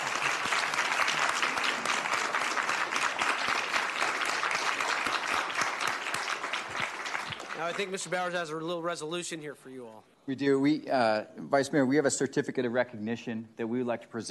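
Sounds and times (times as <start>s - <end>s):
room full of people applauding: 0.0s - 8.5s
speech: 7.6s - 14.2s.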